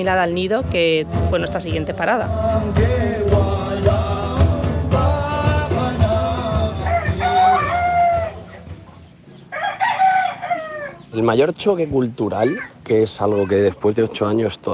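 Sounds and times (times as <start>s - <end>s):
speech: 0.0s - 3.4s, 11.2s - 14.7s
roosters crowing in a house garden in the Philippines: 2.4s - 11.2s.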